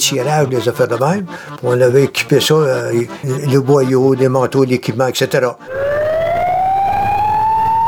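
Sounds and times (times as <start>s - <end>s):
speech: 0.0s - 5.9s
fire alarm siren wailing: 5.7s - 7.8s.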